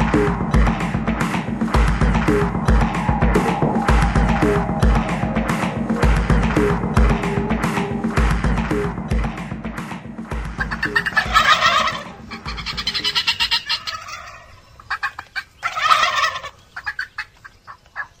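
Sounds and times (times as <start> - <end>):
low rumbling background: 0.0 - 10.8
wild turkeys gobbling: 10.5 - 18.1.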